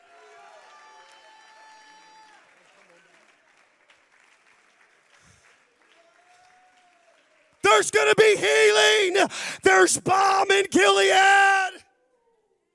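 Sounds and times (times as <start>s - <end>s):
church audience clapping: 0.7s - 11.8s
church audience shouting: 7.7s - 11.8s
speech: 7.8s - 11.5s.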